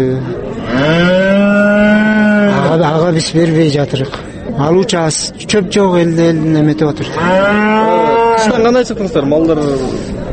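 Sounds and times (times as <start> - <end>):
speech: 0.0 - 1.1, 2.8 - 10.1
cow mooing at a livestock market: 0.7 - 2.7, 6.4 - 8.7.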